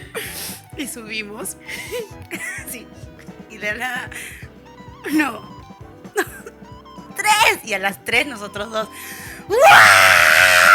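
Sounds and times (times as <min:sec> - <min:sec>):
speech: 0:00.8 - 0:04.4, 0:05.0 - 0:05.5, 0:07.3 - 0:10.0
laughter: 0:01.6 - 0:03.1
loud sustained human scream reenacting a prank: 0:09.5 - 0:10.7.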